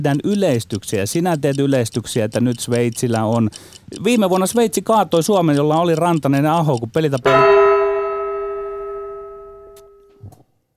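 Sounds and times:
speech: 0.0s - 7.7s
bright ding-dong bell chime: 7.3s - 10.2s.

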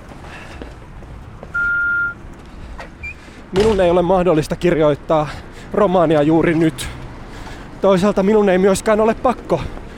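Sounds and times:
loud steady electronic beep: 1.5s - 2.2s
speech: 3.5s - 7.0s, 7.8s - 9.8s.

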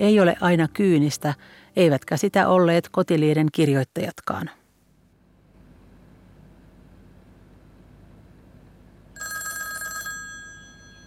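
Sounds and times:
speech: 0.0s - 4.6s
old-style telephone bell ringing in a metallic trill: 9.2s - 11.0s.

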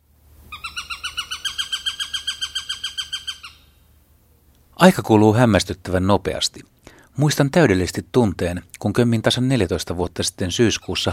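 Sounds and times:
Eurasian sparrowhawk harsh chattering kek call: 0.5s - 3.7s
speech: 4.8s - 11.1s.

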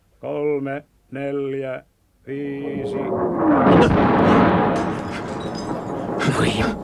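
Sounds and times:
speech: 0.2s - 6.8s
heavy sustained low rumble: 2.4s - 6.8s
artillery shell exploding: 2.6s - 6.8s
sharp bright burst of clatter: 3.4s - 6.8s.

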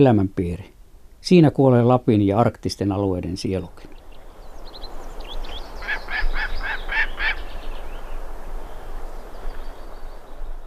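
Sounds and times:
speech: 0.0s - 4.0s
steady outdoor hiss: 0.0s - 10.6s
gyrfalcon giving harsh raspy calls: 3.8s - 10.0s.

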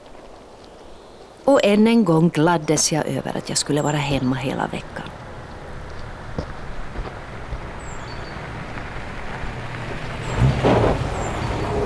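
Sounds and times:
steady road noise: 0.0s - 11.8s
speech: 1.5s - 5.2s
car engine rumbling on approach: 4.0s - 11.8s
thin car brake squeals: 6.8s - 11.8s.

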